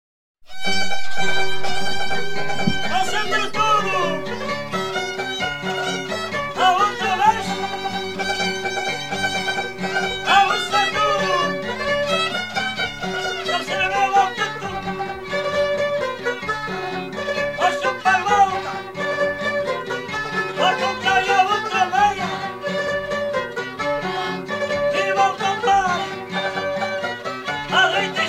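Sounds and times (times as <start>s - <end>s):
folk music: 0.5s - 28.2s.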